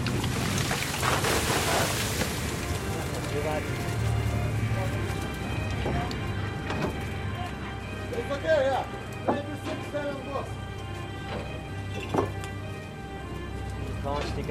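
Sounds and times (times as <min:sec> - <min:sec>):
fishing net and catch hauled aboard a boat, wet splashing and rustling: 0:00.0 - 0:05.5
boat engine rumble: 0:00.0 - 0:14.4
faint voices: 0:02.7 - 0:10.6.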